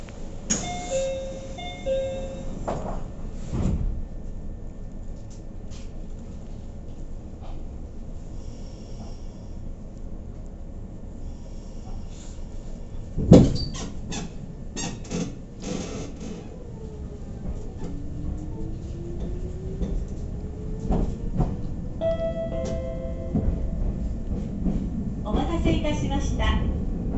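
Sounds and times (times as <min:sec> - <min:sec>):
local train rumbling while pulling away: 0:00.0 - 0:27.1
commuter train door chimes: 0:00.5 - 0:02.5, 0:22.0 - 0:23.9.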